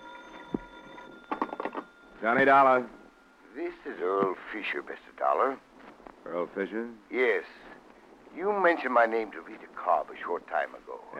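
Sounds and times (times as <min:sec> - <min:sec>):
telephone ringing in a hotel room: 0:00.0 - 0:04.4
steady hum: 0:00.0 - 0:11.1
speech: 0:02.2 - 0:03.0, 0:03.6 - 0:07.7, 0:08.4 - 0:11.1.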